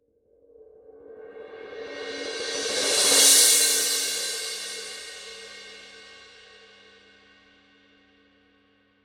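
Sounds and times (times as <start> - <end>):
18-inch thin crash cymbal roll: 2.0 - 6.9.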